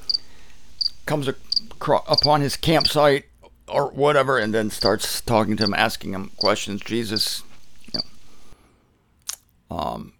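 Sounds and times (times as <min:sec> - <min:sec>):
crickets chirping: 0:00.0 - 0:03.2, 0:04.4 - 0:08.6
speech: 0:01.1 - 0:08.2, 0:09.7 - 0:10.1.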